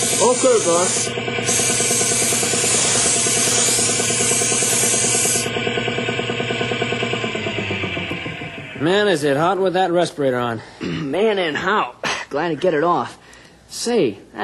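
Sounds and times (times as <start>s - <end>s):
paint sprayer hissing while laying down a coat of paint: 0.0s - 7.1s
rhythmic pulsing mechanical drone: 0.0s - 9.7s
speech: 0.3s - 1.7s, 8.8s - 14.4s.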